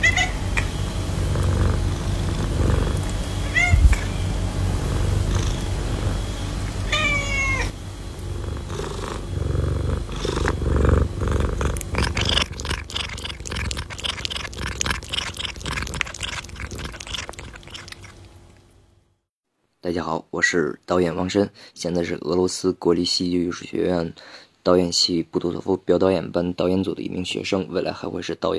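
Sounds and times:
cat purring: 0:00.1 - 0:18.1
speech: 0:19.9 - 0:28.5.

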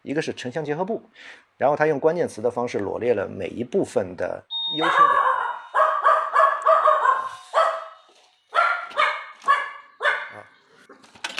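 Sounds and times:
speech: 0:00.1 - 0:05.2
dog barking: 0:04.8 - 0:10.5.

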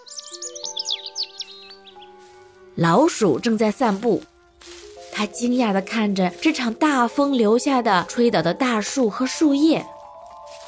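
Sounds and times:
bird singing: 0:00.0 - 0:02.2
speech: 0:02.8 - 0:04.3, 0:05.2 - 0:10.0.

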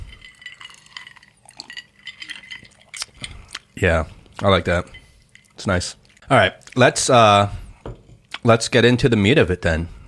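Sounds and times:
glasses clinking during a toast: 0:00.0 - 0:03.5, 0:04.4 - 0:05.9
liquid sloshing: 0:00.0 - 0:06.9
speech: 0:03.8 - 0:05.0, 0:05.6 - 0:07.6, 0:08.4 - 0:10.0.

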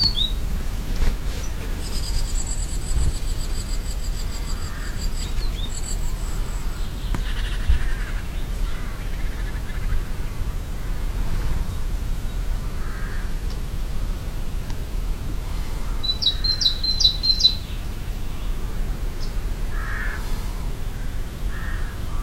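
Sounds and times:
bird chirps in an Estonian forest: 0:00.0 - 0:00.4, 0:01.3 - 0:10.1, 0:15.9 - 0:17.8
birds trilling in an Estonian forest: 0:00.0 - 0:22.2
steady low rumble of wind or noise: 0:00.0 - 0:22.2.

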